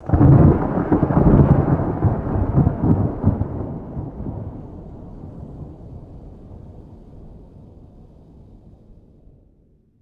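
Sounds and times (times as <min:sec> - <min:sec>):
low distant thunder rumble: 0:00.0 - 0:07.9.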